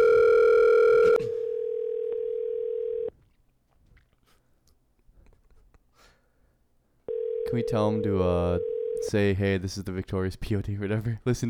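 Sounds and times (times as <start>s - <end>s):
telephone dial tone while placing a call: 0.0s - 3.1s, 7.1s - 9.0s
speech: 7.5s - 11.4s.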